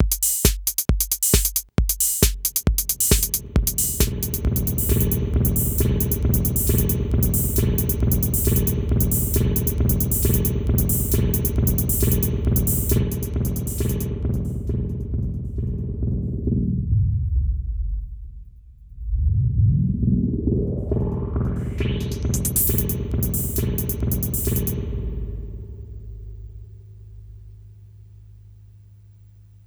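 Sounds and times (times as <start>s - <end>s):
reversed 808 drum machine hit: 0.0s - 27.8s.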